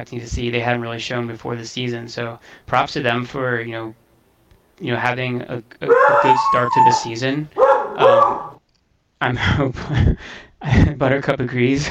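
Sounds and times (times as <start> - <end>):
speech: 0.0 - 4.0, 4.8 - 8.5, 9.2 - 11.9
beagle baying and barking: 5.8 - 8.6.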